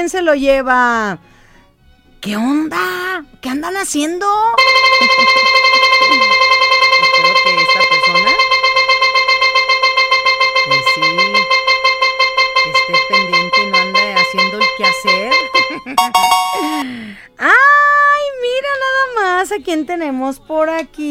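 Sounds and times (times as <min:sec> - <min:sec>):
speech: 0:00.0 - 0:01.3, 0:02.2 - 0:06.4, 0:14.8 - 0:17.8, 0:18.4 - 0:21.0
roulette-style wheel spinning: 0:04.6 - 0:16.8
bright chiming electronic tone: 0:04.6 - 0:16.9.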